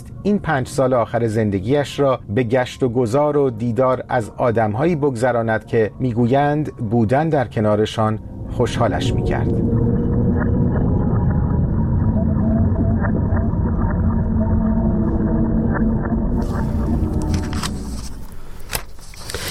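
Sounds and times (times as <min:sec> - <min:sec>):
speech: 0:00.2 - 0:09.8
beluga white whale calls underwater: 0:08.2 - 0:17.2.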